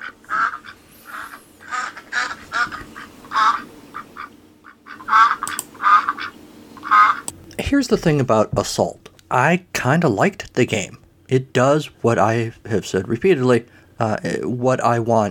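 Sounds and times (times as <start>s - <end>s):
duck quacking in short nasal bursts: 0.0s - 7.3s
speech: 7.7s - 15.3s.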